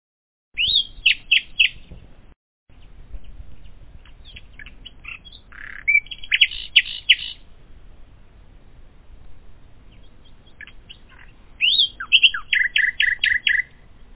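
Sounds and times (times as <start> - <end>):
common nightingale singing: 0.6 - 2.0, 2.7 - 7.5, 9.7 - 14.1.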